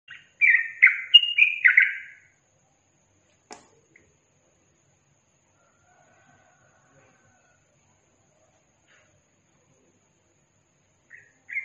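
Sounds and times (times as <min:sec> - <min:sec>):
Yellow-vented bulbul song: 0:00.1 - 0:02.4, 0:11.0 - 0:11.6.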